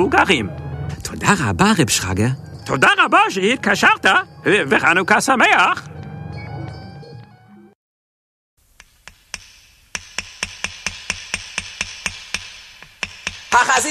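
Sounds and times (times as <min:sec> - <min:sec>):
speech: 0:00.0 - 0:05.9
hammer driving nails into the walls of a sukkah: 0:08.8 - 0:13.7.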